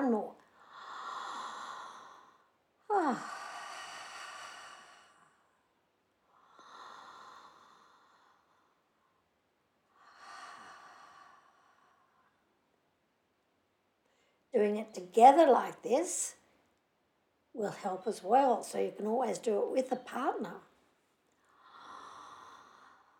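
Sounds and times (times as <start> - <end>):
deep breaths in and out during a guided breathing exercise: 0.4 - 12.6, 14.0 - 14.5, 21.4 - 23.1
speech: 14.6 - 16.4, 17.6 - 20.7.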